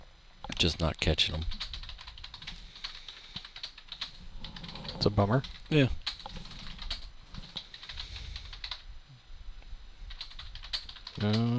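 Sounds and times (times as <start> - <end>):
speech: 0.6 - 1.7, 5.0 - 6.0, 11.2 - 11.5
typing on a computer keyboard: 1.3 - 8.9, 10.1 - 11.5.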